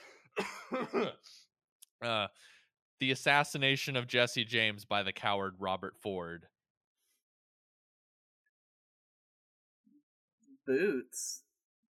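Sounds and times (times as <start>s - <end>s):
person clearing throat: 0.4s - 1.2s
speech: 0.7s - 1.3s, 2.0s - 6.5s, 10.7s - 11.4s.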